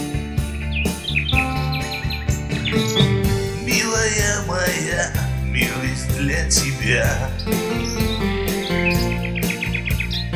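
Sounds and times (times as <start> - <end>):
full steady musical backing with percussive beats: 0.0 - 10.3
short bright bird chirps: 0.4 - 4.0, 7.2 - 10.3
speech: 4.5 - 8.3.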